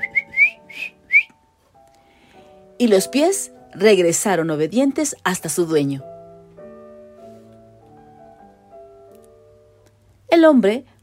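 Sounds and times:
man whistling as if calling a dog: 0.0 - 1.4
speech: 2.8 - 6.2, 10.4 - 10.9.

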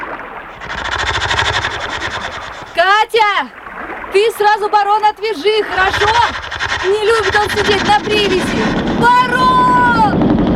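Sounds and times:
boat motor being started for a trip to shore: 0.6 - 3.5, 5.3 - 10.2
speech: 3.1 - 9.4.

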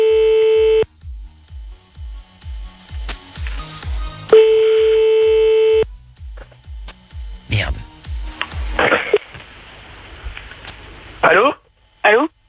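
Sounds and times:
high telephone line tone from a call to a broken phone line: 0.0 - 0.8, 4.4 - 5.8
rhythmic low pulse: 0.0 - 8.8.

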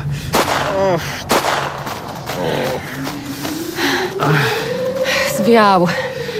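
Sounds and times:
steady wavering tonal background: 0.0 - 6.3
gunshots during a staged chase: 0.2 - 3.5
speech: 0.8 - 1.3, 5.5 - 6.1.

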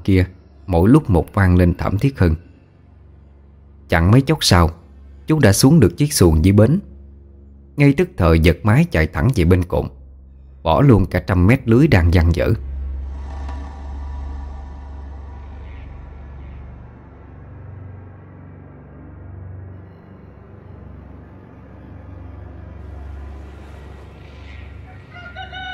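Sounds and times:
heavy low rumble: 0.0 - 25.1
speech: 0.1 - 2.5, 3.9 - 6.9, 7.8 - 10.0, 10.6 - 12.7
rooster crowing at dawn in a riverside countryside setting: 24.5 - 25.7.

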